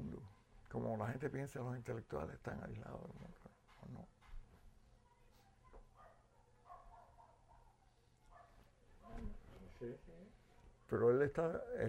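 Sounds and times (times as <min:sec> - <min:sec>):
speech: 0:00.7 - 0:04.2, 0:09.8 - 0:11.8
dogs barking in Cuba: 0:05.9 - 0:08.6.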